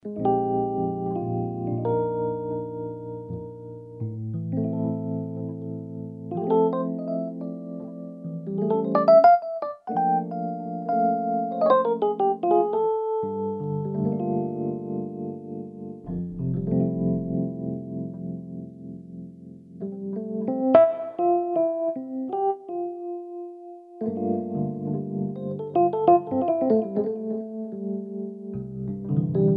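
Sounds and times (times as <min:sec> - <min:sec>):
Casio Privia PX-5S rhodes electric piano: 0:00.0 - 0:29.5.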